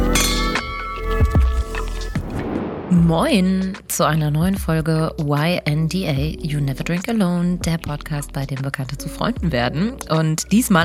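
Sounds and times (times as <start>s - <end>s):
raised glasses clinking in a toast: 0.1s - 1.6s
speech: 3.0s - 10.8s.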